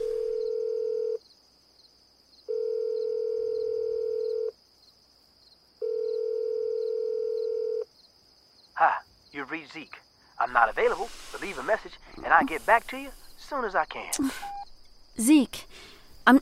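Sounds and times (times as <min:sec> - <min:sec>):
outgoing phone call ringback tone: 0:00.0 - 0:01.2, 0:02.5 - 0:04.5, 0:05.8 - 0:07.8
speech: 0:09.4 - 0:14.6, 0:15.2 - 0:15.5.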